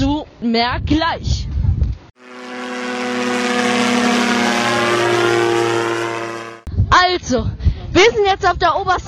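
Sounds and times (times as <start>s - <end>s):
speech: 0.4s - 1.4s, 6.9s - 9.0s
airplane engines roaring on airport runway: 2.2s - 6.7s.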